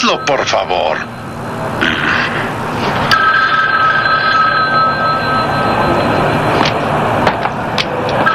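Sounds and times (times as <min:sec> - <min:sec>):
telephone ringing: 0:00.0 - 0:01.5, 0:03.1 - 0:07.1, 0:08.2 - 0:08.3
speech: 0:00.0 - 0:02.4
loud rumbling noise: 0:00.0 - 0:08.3.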